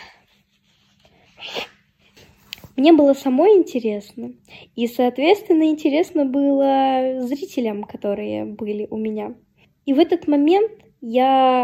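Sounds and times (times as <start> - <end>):
woman sneezing: 1.4 - 1.8
speech: 2.8 - 11.6.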